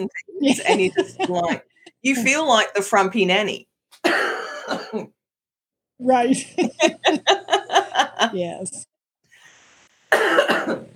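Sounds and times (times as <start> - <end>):
speech: 0.0 - 5.1, 6.0 - 8.9, 10.1 - 10.9
harsh cough with a raspy tail: 4.0 - 5.2, 10.1 - 10.9.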